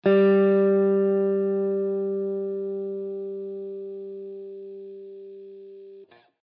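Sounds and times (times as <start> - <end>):
guitar G third string note: 0.0 - 6.3.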